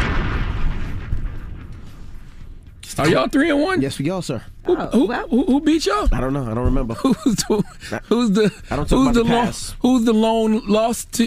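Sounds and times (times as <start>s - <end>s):
bomb explosion sound effect: 0.0s - 7.0s
speech: 3.0s - 11.2s
laughter: 6.8s - 9.6s.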